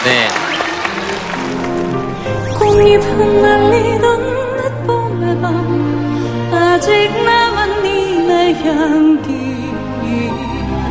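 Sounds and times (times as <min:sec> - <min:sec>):
audience applauding: 0:00.0 - 0:02.4
music: 0:00.0 - 0:10.9
speech: 0:02.8 - 0:04.3.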